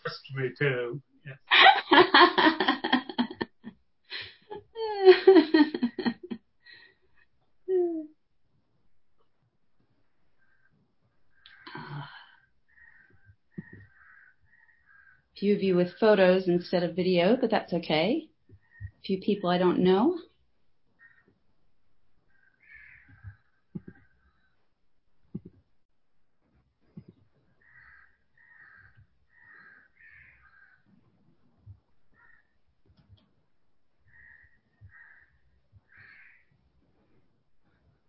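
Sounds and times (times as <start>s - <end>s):
speech: 0.3s - 2.5s, 15.5s - 18.3s, 19.0s - 20.3s
laughter: 1.5s - 6.4s
birds cawing in harsh raspy bursts: 12.7s - 15.2s, 21.0s - 21.3s, 22.3s - 24.4s, 27.6s - 30.8s, 32.2s - 32.5s, 34.1s - 36.5s.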